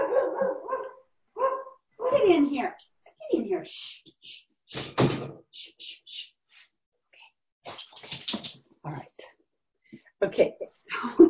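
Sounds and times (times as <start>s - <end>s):
dog barking: 0.0s - 2.3s
speech: 2.1s - 2.9s, 3.6s - 6.0s, 10.4s - 11.2s.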